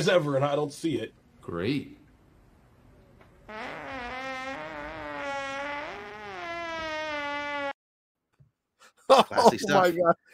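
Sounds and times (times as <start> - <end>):
speech: 0.0 - 2.0, 9.1 - 10.3
long loud buzzy fart: 3.5 - 7.8
laughter: 9.1 - 10.0.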